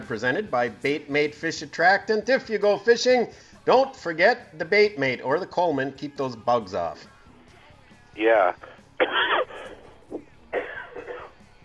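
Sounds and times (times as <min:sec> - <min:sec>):
speech: 0:00.1 - 0:07.1, 0:08.2 - 0:09.3
person coughing: 0:08.6 - 0:11.4.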